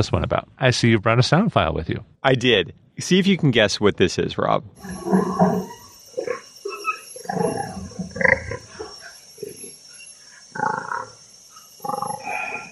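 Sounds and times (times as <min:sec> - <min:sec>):
speech: 0:00.0 - 0:06.4
young orangutan laughing: 0:04.8 - 0:09.6.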